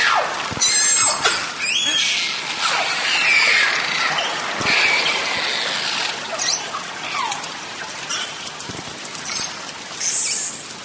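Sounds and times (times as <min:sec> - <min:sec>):
Beluga whale whistles, chirps and descending squeak: 0:00.0 - 0:05.0
constant crackling hiss: 0:00.0 - 0:10.8.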